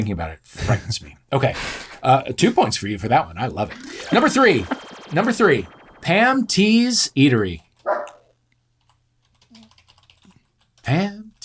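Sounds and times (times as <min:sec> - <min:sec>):
speech: 0:00.0 - 0:08.0, 0:10.9 - 0:11.2
computer keyboard keys tapping: 0:08.8 - 0:10.8.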